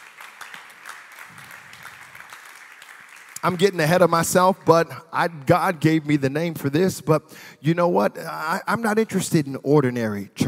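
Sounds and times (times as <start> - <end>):
sharper hand claps: 0.0 - 3.7
crowd applause: 0.0 - 4.2
speech: 3.4 - 10.4.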